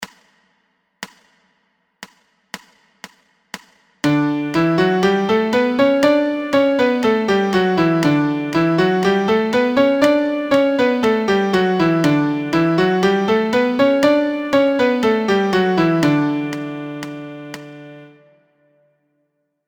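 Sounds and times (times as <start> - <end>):
MIDI major scale in D: 4.0 - 18.4.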